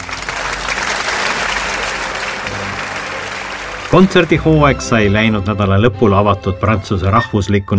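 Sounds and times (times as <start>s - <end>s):
applause from a large audience: 0.0s - 6.1s
speech: 3.9s - 7.7s.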